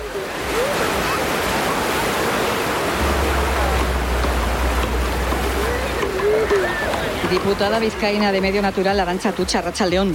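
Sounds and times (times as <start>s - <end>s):
sea waves washing onto the beach at Gorliz, Biscay, on a breezy day: 0.0s - 10.1s
faint low rumble: 3.0s - 7.3s
speech: 7.3s - 10.1s.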